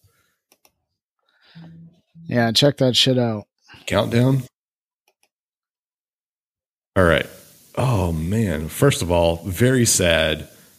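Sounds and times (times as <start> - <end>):
noise: 0.0 - 4.6, 7.0 - 10.7
computer mouse clicks on a link: 0.5 - 0.8, 5.1 - 5.3
speech: 1.6 - 4.5, 7.0 - 10.6.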